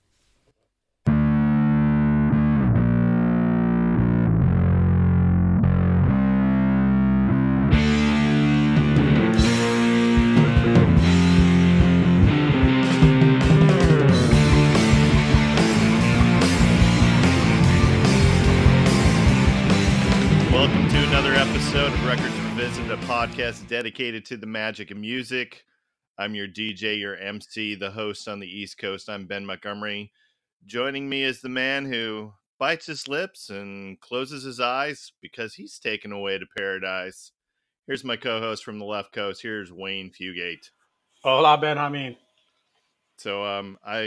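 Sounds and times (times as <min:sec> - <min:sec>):
distorted punk-style band music with guitar and drums: 0:01.1 - 0:23.7
speech: 0:22.6 - 0:42.2, 0:43.2 - 0:44.0.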